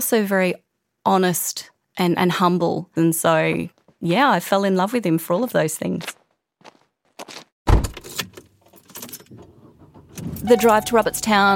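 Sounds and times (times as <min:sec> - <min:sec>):
speech: 0:00.0 - 0:06.2, 0:10.4 - 0:11.5
keys jangling: 0:08.0 - 0:09.5
rustling and clinking of someone settling into a car: 0:08.0 - 0:11.3
car door shutting: 0:09.2 - 0:11.4.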